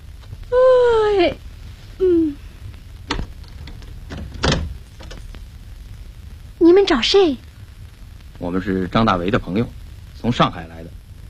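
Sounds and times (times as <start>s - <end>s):
speech: 1.2s - 1.4s, 6.9s - 7.5s, 8.4s - 11.0s
house door creaking open late at night: 3.1s - 5.3s.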